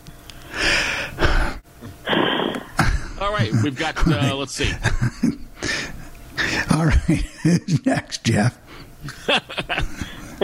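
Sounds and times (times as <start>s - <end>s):
group of people on a video call taking a deep breath: 0.4s - 3.1s, 5.6s - 6.7s, 9.9s - 10.4s
laughter: 2.8s - 5.8s, 9.0s - 10.4s
speech: 3.2s - 5.4s, 6.8s - 10.4s.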